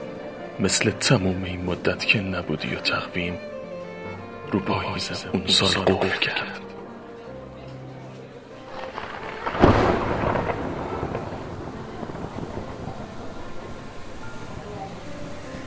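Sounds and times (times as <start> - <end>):
speech: 0.6 - 3.6, 4.5 - 6.7
single clap of thunder: 8.7 - 15.6.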